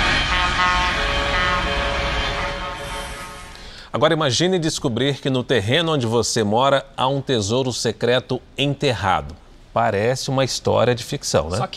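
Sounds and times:
truck horns blaring in street protest: 0.0s - 3.7s
speech: 3.9s - 11.7s.

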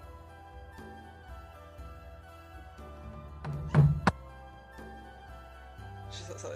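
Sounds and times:
knocking on a door: 3.5s - 4.2s
speech: 6.2s - 6.5s.

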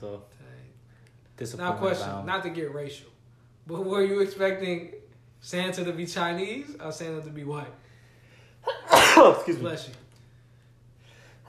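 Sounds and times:
speech: 0.0s - 0.8s, 1.4s - 7.9s, 8.6s - 10.0s
single loud sneeze: 8.7s - 9.6s.

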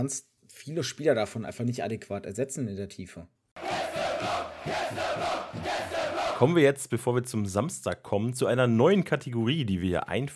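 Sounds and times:
speech: 0.0s - 3.4s, 4.2s - 10.3s
crowd chanting as a segment intro jingle: 3.6s - 6.6s.

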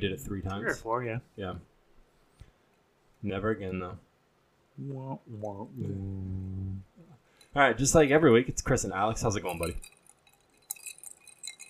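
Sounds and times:
speech: 0.0s - 1.7s, 3.2s - 4.1s, 4.8s - 6.5s, 7.6s - 10.0s
ice cubes clinking in a whiskey glass: 9.4s - 11.6s.

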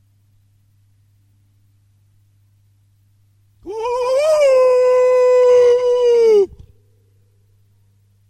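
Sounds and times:
faint low hum: 0.0s - 8.2s
dog howling: 3.6s - 6.6s.

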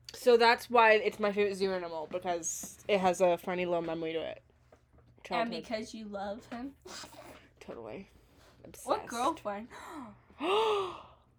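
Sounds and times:
speech: 0.2s - 4.5s, 5.2s - 11.1s
sharp breathy gasp: 9.8s - 11.2s.

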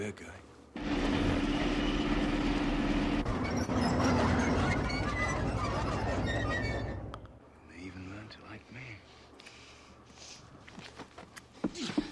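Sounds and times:
speech: 0.0s - 1.2s, 7.8s - 9.2s
video game train rumbling and rattling: 0.8s - 7.1s.

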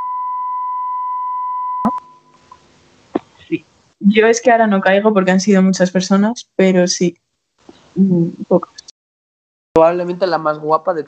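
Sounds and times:
censor bleep tone: 0.0s - 2.4s
faint noise: 1.9s - 8.9s, 9.8s - 11.0s
speech: 3.5s - 7.2s, 8.0s - 8.8s, 9.8s - 11.0s.

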